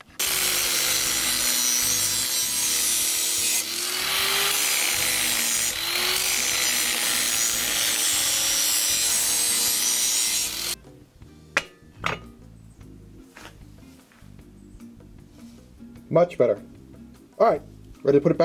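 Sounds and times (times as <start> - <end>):
metal file rasping against a lawnmower blade: 0.2 - 10.8
speech: 16.2 - 16.8, 17.4 - 18.4.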